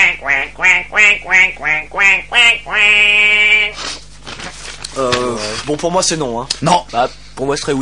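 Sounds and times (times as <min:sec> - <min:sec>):
duck quacking: 0:00.0 - 0:03.8
speech: 0:00.6 - 0:07.7.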